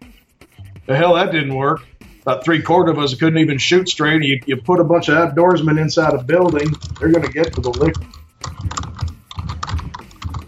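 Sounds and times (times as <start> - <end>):
speech: 0.9 - 8.2
mechanical keyboard typing: 6.1 - 10.4.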